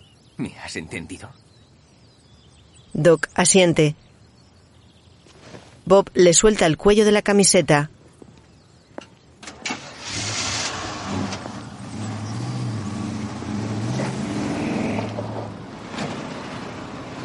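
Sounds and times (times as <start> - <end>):
speech: 0.4 - 1.4, 3.0 - 4.0, 5.9 - 8.0
van engine pulling away along a road: 9.4 - 17.2.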